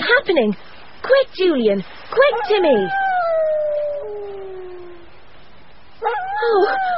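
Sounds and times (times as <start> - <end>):
speech: 0.1 - 3.0, 6.4 - 6.9
dog howling on an island: 2.3 - 5.2, 6.0 - 6.9.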